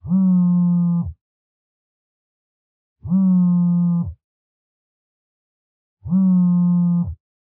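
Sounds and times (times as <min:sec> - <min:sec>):
cell phone vibrating on a blanket: 0:00.0 - 0:01.2, 0:03.0 - 0:04.2, 0:06.0 - 0:07.2.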